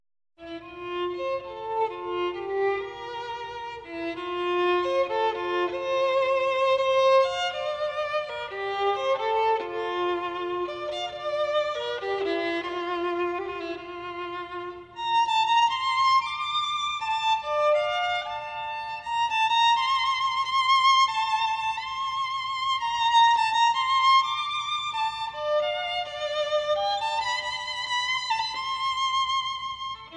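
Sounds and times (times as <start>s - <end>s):
solo violin: 0.4s - 30.1s.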